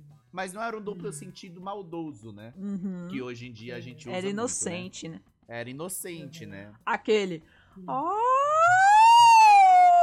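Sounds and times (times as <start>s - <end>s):
speech: 0.4s - 8.9s
ambulance siren wailing: 8.0s - 10.0s.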